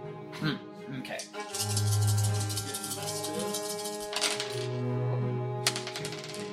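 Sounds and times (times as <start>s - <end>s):
speech: 0.4s - 1.3s
dice rattling across a hard surface: 1.5s - 4.8s, 5.7s - 6.5s.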